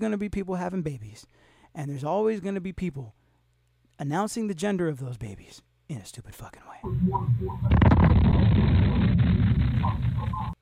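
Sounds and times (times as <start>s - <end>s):
speech: 0.0s - 3.2s, 4.0s - 10.6s
gender reveal explosion blast: 6.9s - 10.6s
low rumbling roar: 6.9s - 10.6s.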